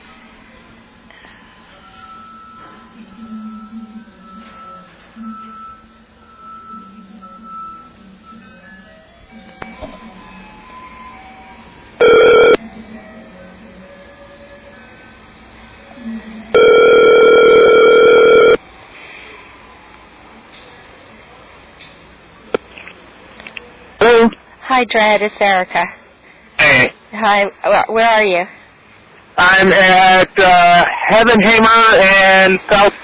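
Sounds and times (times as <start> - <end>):
phone ringback tone: 12.0 - 12.6, 16.5 - 18.6
speech: 24.8 - 26.0, 26.6 - 28.6, 29.4 - 33.0.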